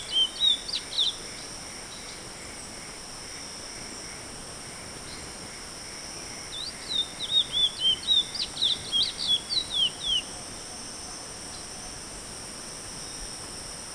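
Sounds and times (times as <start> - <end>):
Chestnut-bellied seed finch song: 0.0 - 2.2, 6.5 - 10.4
steady high hiss: 0.0 - 13.9.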